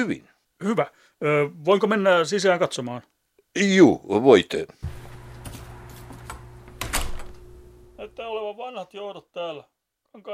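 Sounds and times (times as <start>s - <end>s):
speech: 0.0s - 5.0s, 8.2s - 10.3s
heavy soundproofed door with keypad lock shifting with soft clicks and knocks: 4.8s - 8.0s
steady low electrical hum: 4.8s - 8.3s.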